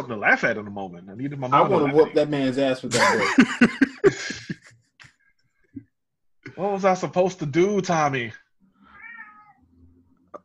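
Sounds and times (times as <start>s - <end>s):
speech: 0.1s - 4.6s, 6.6s - 8.4s
laughter: 2.9s - 5.2s
cat meowing: 8.8s - 9.9s.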